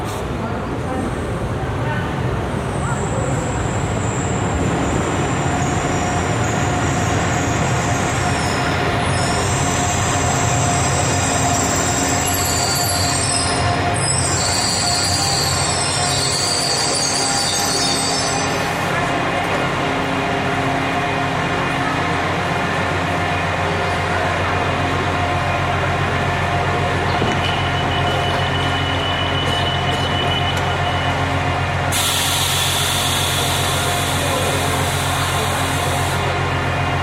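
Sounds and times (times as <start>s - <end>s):
passenger train pulling in to a station platform: 0.0s - 37.0s
train wheel squeals: 4.0s - 18.7s, 27.2s - 31.2s.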